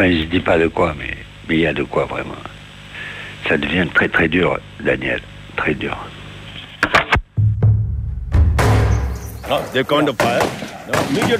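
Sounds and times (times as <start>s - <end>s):
speech: 0.0s - 2.5s, 3.5s - 6.2s, 9.5s - 11.3s
heavy blast: 7.4s - 9.8s
gunshots fired and returned: 8.4s - 11.3s.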